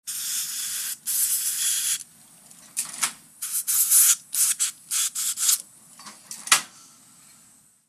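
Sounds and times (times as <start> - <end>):
dentist's dental air blower: 0.1 - 2.0, 3.4 - 5.6.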